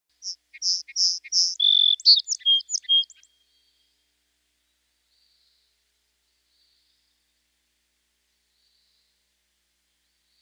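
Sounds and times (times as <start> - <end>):
sparrow singing: 0.1 - 3.3.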